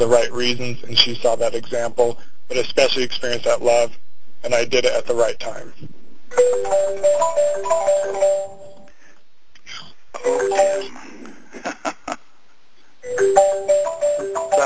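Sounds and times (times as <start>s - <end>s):
speech: 0.0s - 8.6s, 10.2s - 11.7s, 13.0s - 14.6s
mobile phone ringtone playing a repeating electronic melody: 6.3s - 8.9s, 10.2s - 10.9s, 13.0s - 14.6s.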